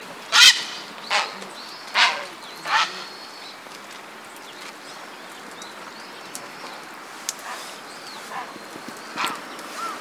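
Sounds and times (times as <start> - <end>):
grey heron Ardea cinerea: 0.3 - 3.6, 7.4 - 9.9.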